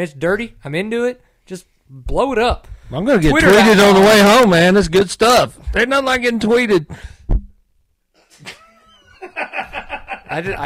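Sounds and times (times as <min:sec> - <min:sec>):
speech: 0:00.0 - 0:07.4, 0:09.3 - 0:10.6
thump: 0:07.3 - 0:07.5
laughter: 0:08.3 - 0:10.6.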